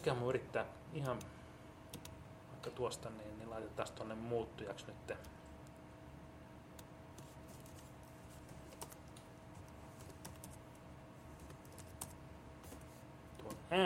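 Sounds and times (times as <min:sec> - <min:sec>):
speech: 0:00.0 - 0:01.4, 0:02.6 - 0:05.4
faint constant hum: 0:00.0 - 0:13.8
typing on a computer keyboard: 0:08.7 - 0:10.6, 0:11.4 - 0:12.2.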